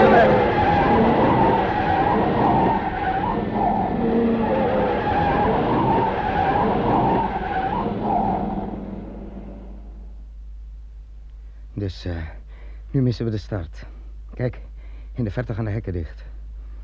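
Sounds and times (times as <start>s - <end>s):
car braking hard and skidding, tires screeching and scrubbing: 0.0s - 10.0s
car engine droning: 0.0s - 10.4s
speech: 12.0s - 16.3s.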